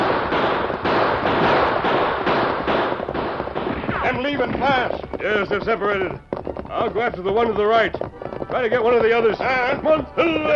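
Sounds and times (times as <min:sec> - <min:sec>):
gunshots in a radio western drama during a stagecoach holdup: 0:00.0 - 0:05.8
speech: 0:04.4 - 0:10.5.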